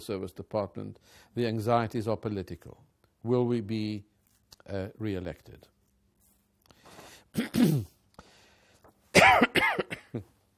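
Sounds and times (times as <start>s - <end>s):
speech: 0.0s - 5.7s, 7.3s - 8.0s, 9.2s - 10.3s
person coughing: 7.3s - 8.0s, 9.1s - 10.3s.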